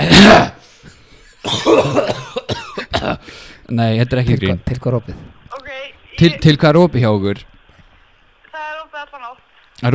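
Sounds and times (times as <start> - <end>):
person coughing: 0.0 - 0.6, 1.4 - 3.3
speech: 3.7 - 5.4, 6.2 - 7.5, 9.2 - 9.9.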